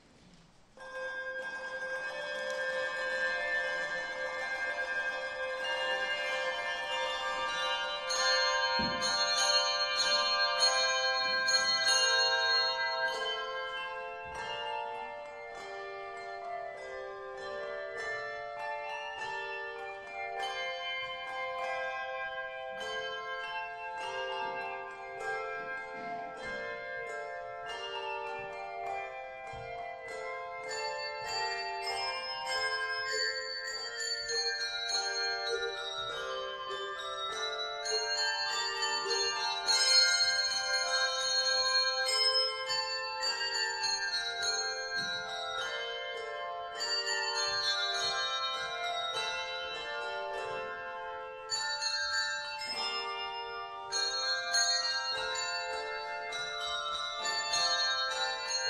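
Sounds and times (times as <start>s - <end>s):
handbells playing a prelude: 0.0s - 58.6s.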